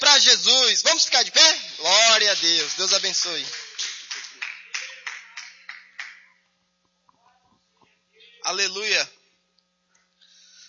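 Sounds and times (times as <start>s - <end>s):
standing church audience clapping in rhythm to welcome a speaker: 1.1s - 6.4s
speech: 2.2s - 3.7s, 8.5s - 9.2s.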